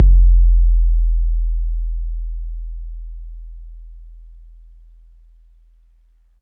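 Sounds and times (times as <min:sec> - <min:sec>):
808 bass drum click: 0:00.0 - 0:01.9.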